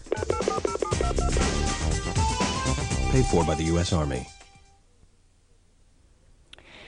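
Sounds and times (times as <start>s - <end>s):
musical bed: 0.0s - 4.8s
telephone keypad dual-pitched tones: 0.1s - 1.4s
speech: 3.2s - 4.4s.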